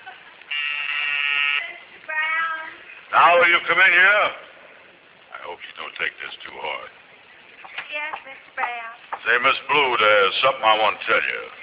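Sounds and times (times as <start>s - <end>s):
office intercom buzzer buzzing: 0.5s - 1.8s
speech: 3.2s - 4.5s, 5.5s - 7.0s, 7.9s - 11.6s.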